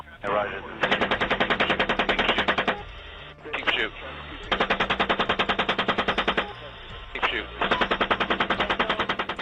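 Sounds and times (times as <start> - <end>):
radio-like voices: 0.0 - 1.0, 1.6 - 4.8, 6.1 - 9.4
rapid automatic gunfire from a helicopter: 0.8 - 2.9, 4.4 - 6.6, 7.3 - 9.4.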